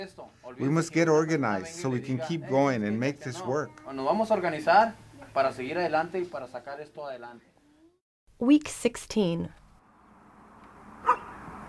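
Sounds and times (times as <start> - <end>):
speech: 0.0 - 7.5, 8.4 - 9.6
single short dog bark on muddy roads after spring rain: 11.0 - 11.4.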